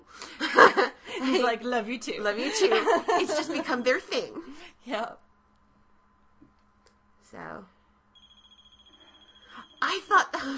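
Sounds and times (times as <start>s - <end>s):
laughter: 0.4s - 1.6s, 2.4s - 4.6s
speech: 1.4s - 5.2s, 7.3s - 7.7s, 9.9s - 10.5s
high-pitched electronic beeping: 8.1s - 10.2s.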